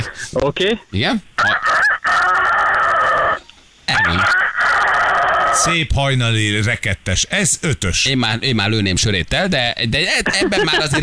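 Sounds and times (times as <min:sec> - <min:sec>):
speech: 0:00.0 - 0:01.7, 0:03.9 - 0:04.4, 0:05.6 - 0:11.0
person imitating a rooster crowing: 0:01.4 - 0:05.7
laughter: 0:10.2 - 0:11.0.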